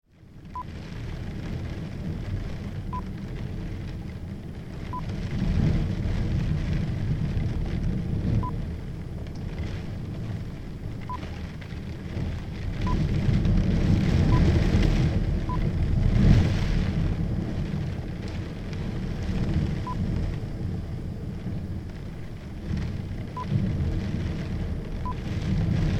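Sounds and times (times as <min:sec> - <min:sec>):
storm wind heard from inside at a window: 0:00.1 - 0:25.9.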